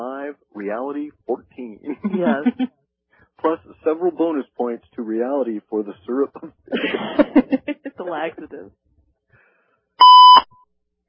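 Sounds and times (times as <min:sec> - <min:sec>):
laughter: 0:00.1 - 0:01.0, 0:01.6 - 0:02.7, 0:03.4 - 0:08.6
speech: 0:00.3 - 0:02.8, 0:03.4 - 0:08.8
short electronic beep signalling an incoming caller: 0:10.0 - 0:10.6.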